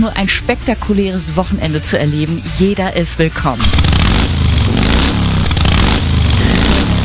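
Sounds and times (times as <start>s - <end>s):
speech: 0.0s - 5.1s
motorcycle engine revving: 2.4s - 7.0s.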